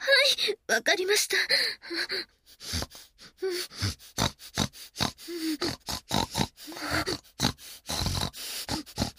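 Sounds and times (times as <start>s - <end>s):
speech: 0.3s - 4.3s, 5.3s - 8.1s
human voice imitating a pig's grunting: 3.4s - 9.1s.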